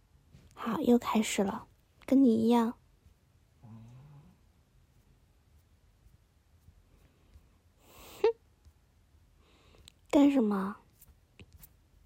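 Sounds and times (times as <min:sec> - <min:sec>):
speech: 0:00.6 - 0:02.8, 0:10.1 - 0:10.8
sleeping dog snoring: 0:03.6 - 0:04.4.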